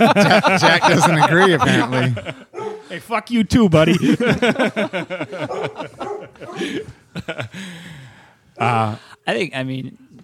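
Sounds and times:
person speaking or chuckling: 0:00.0 - 0:02.6, 0:04.0 - 0:07.8
speech: 0:00.0 - 0:08.0, 0:08.6 - 0:10.0
dog barking with short yappy barks and whines: 0:02.5 - 0:02.9, 0:05.4 - 0:06.6.

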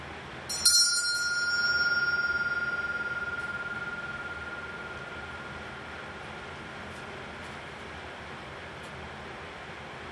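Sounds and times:
bell struck during a quiet listening exercise: 0:00.5 - 0:07.2.

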